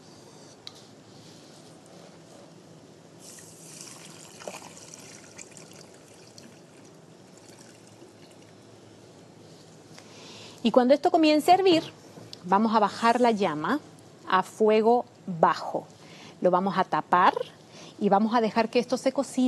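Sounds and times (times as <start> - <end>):
water pouring into a cooking pot holding quinoa, amaranth and diced sweet potato: 3.2 - 8.6
speech: 10.6 - 19.4.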